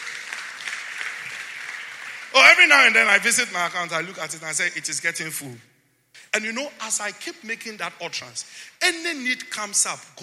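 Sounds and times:
audience applauding with many hands clapping: 0:00.0 - 0:03.5
speech: 0:02.6 - 0:05.7, 0:06.3 - 0:10.2.

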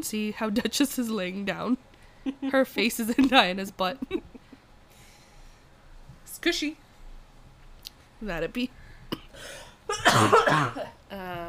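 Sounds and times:
speech: 0:00.0 - 0:04.2, 0:06.4 - 0:06.8, 0:08.2 - 0:08.8, 0:09.4 - 0:11.4
person coughing harshly: 0:09.1 - 0:11.0.

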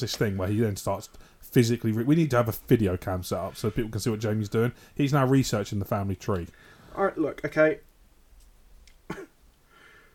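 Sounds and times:
speech: 0:00.0 - 0:07.9
faint hiss: 0:00.0 - 0:10.1
man coughing: 0:09.1 - 0:09.4.

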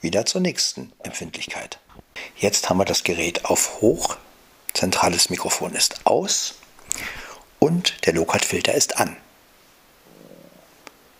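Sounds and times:
speech: 0:00.0 - 0:09.2
low gurgling stomach rumble: 0:10.0 - 0:10.9.

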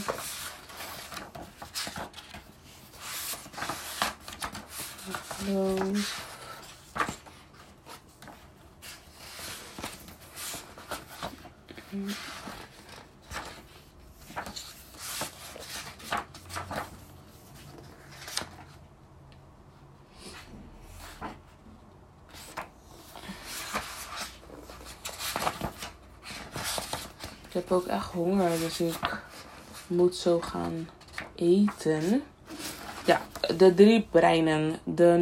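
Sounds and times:
book pages being flipped through: 0:00.0 - 0:18.8, 0:20.2 - 0:33.6
speech: 0:05.4 - 0:06.2, 0:12.0 - 0:12.3, 0:27.7 - 0:29.3, 0:29.9 - 0:32.3, 0:33.1 - 0:35.2.

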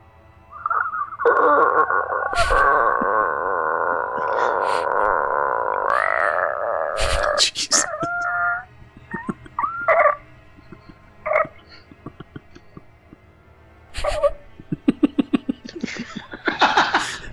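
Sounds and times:
vocal imitation of a creaking door slowly swinging open: 0:00.6 - 0:12.8
laughter: 0:01.0 - 0:05.3, 0:07.0 - 0:17.3.

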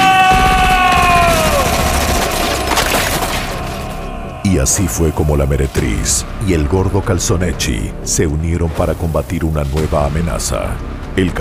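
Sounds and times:
rapid gunfire sound effect: 0:00.3 - 0:04.1
speech: 0:04.5 - 0:11.3.

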